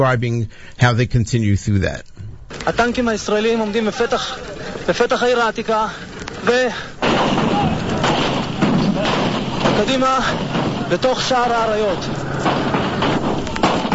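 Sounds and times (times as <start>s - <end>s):
speech: 0.0s - 7.6s, 9.8s - 12.2s
gunshots: 6.4s - 13.9s.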